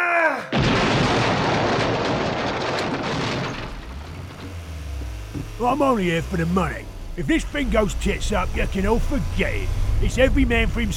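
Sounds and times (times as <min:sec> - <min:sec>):
video game grenade explosion: 0:00.5 - 0:04.7
speech: 0:05.6 - 0:10.9.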